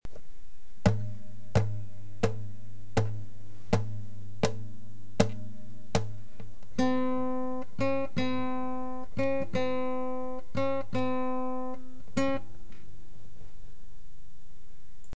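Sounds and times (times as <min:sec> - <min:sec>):
classical guitar playing dotted eighth notes: 0:00.8 - 0:12.6.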